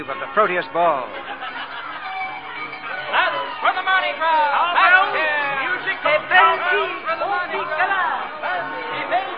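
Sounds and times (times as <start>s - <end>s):
speech: 0.0s - 1.4s
lively crowd chattering during the Mardi Gras season in New Orleans: 0.0s - 9.3s
crowd laughter: 1.0s - 3.5s.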